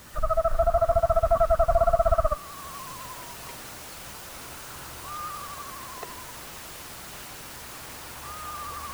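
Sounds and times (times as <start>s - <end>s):
screech owl trilling softly: 0.0s - 3.4s, 5.0s - 6.3s, 8.2s - 8.9s
pre-recorded owl calls played from a field loudspeaker: 0.0s - 6.6s, 8.0s - 8.9s.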